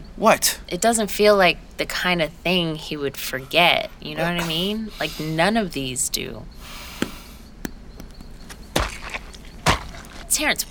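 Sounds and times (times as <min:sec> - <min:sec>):
speech: 0:00.2 - 0:06.8, 0:10.4 - 0:10.6
heavy wet stomps crushing apples: 0:06.8 - 0:10.2.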